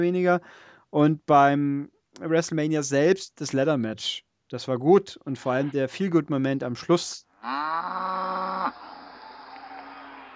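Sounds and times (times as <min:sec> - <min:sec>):
speech: 0:00.0 - 0:08.9
cow giving a long loud moo: 0:07.4 - 0:10.3.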